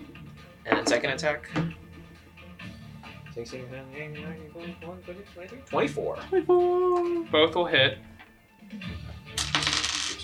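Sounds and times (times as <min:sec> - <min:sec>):
speech: 0:00.8 - 0:01.8, 0:03.4 - 0:08.1, 0:08.7 - 0:09.0
three dice rolled onto a table in a tabletop game: 0:09.4 - 0:10.2.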